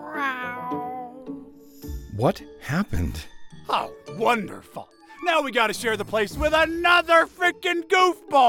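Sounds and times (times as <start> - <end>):
cat meowing: 0.0 - 1.2
speech: 2.2 - 8.4.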